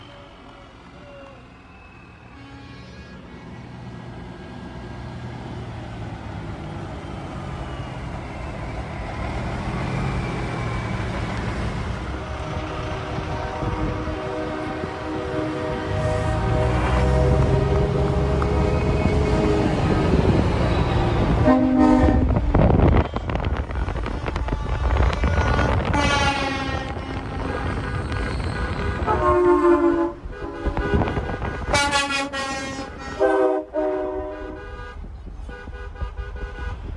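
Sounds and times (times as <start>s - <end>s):
night convoy of trucks arriving, engine rumble: 0.0s - 36.9s
air horn blasts: 2.2s - 3.3s, 12.2s - 18.0s, 21.3s - 36.9s.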